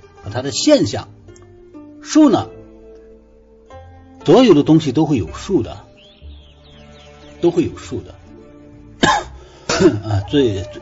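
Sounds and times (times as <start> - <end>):
speech: 0.3 - 1.2, 2.0 - 2.6, 4.2 - 5.8, 7.4 - 8.2, 9.8 - 10.8
person with a cold coughing: 9.0 - 10.2.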